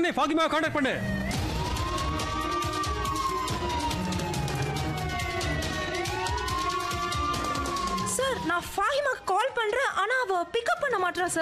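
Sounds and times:
speech: 0.0s - 1.2s, 8.4s - 11.4s
ambulance siren wailing: 0.9s - 11.4s.

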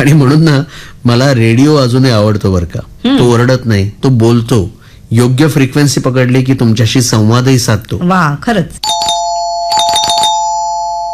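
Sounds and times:
speech: 0.0s - 9.0s
doorbell ringing with a steady electronic tone: 8.8s - 11.1s.

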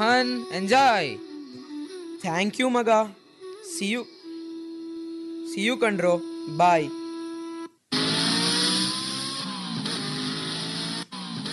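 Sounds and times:
speech: 0.0s - 1.3s, 2.2s - 4.2s, 5.6s - 7.0s
motorcycle ridden very fast roaring past: 7.9s - 11.5s.

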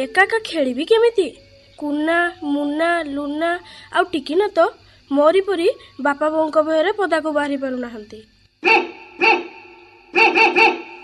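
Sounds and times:
speech: 0.0s - 8.9s
pet dog barking: 8.6s - 11.0s.

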